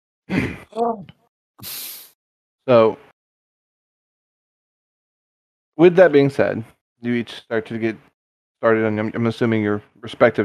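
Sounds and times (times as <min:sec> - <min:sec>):
speech: 0:00.3 - 0:01.8, 0:02.7 - 0:03.0, 0:05.8 - 0:10.4
person performing an exaggerated fake gasp: 0:01.6 - 0:02.1
hissing breath: 0:01.6 - 0:02.2.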